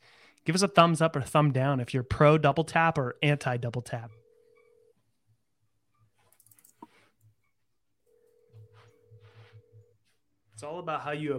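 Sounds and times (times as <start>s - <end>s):
speech: 0.5s - 4.2s, 10.6s - 11.3s
steady telephone tone: 4.0s - 5.0s, 8.1s - 10.0s.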